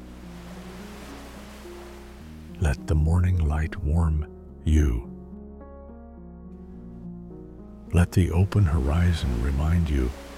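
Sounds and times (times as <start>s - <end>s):
ocean waves breaking on a beach: 0.0s - 3.2s, 8.0s - 10.3s
speech: 2.6s - 5.1s, 7.9s - 10.2s.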